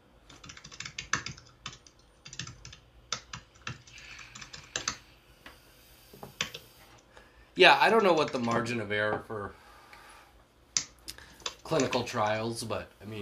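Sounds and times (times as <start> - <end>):
typing on a computer keyboard: 0.3 - 5.0, 6.3 - 6.6, 8.0 - 8.7, 10.8 - 12.1
speech: 7.6 - 9.6, 11.7 - 13.2.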